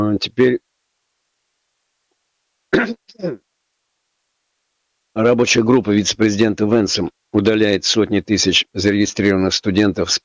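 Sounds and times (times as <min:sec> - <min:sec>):
speech: 0:00.0 - 0:00.6, 0:02.7 - 0:03.4, 0:05.2 - 0:10.2
person clearing throat with a harsh cough: 0:02.7 - 0:03.4.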